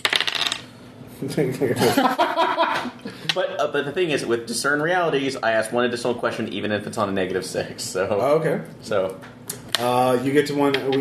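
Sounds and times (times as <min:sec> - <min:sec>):
two dice tumbling across a hard surface: 0:00.0 - 0:00.7
speech: 0:01.2 - 0:10.9
people chuckling: 0:01.8 - 0:03.3.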